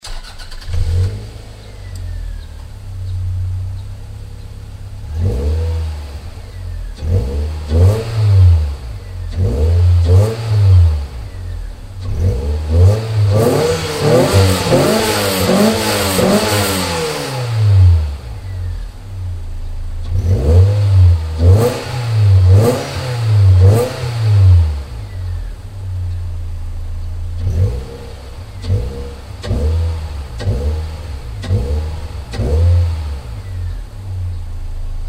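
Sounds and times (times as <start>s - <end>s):
SW20 car exhaust through muffler: 0.0s - 35.0s.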